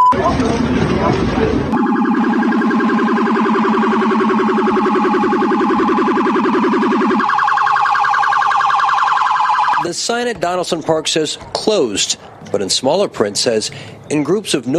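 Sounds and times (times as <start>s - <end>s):
speech: 0.1s - 2.4s, 9.9s - 14.7s
police car siren at Malibu Pier: 1.7s - 10.0s.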